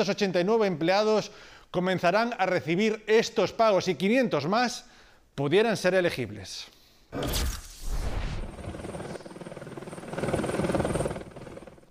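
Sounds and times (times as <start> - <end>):
speech: 0.0 - 7.6
helicopter rotor thumping under a broad roar: 7.2 - 11.8.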